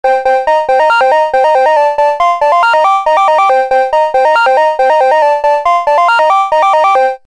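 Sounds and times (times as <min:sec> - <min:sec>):
melodic bell synth on mfb synthII: 0:00.1 - 0:07.2.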